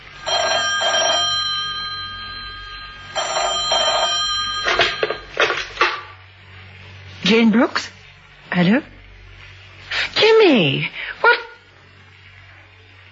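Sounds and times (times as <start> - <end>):
telephone ringing with a bright trilling bell: 0.0 - 5.7
clattering knocks: 3.2 - 6.1
speech: 7.3 - 8.9, 10.5 - 11.0.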